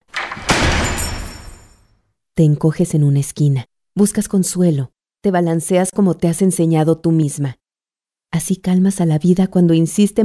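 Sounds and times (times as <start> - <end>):
door slamming shut hard: 0.0 - 1.9
speech: 2.4 - 7.6, 8.3 - 10.2.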